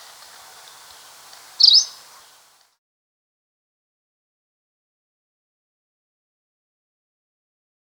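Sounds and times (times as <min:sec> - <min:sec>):
two-barred greenish warbler chirp: 0:00.0 - 0:02.6
soft background hiss: 0:00.0 - 0:02.7.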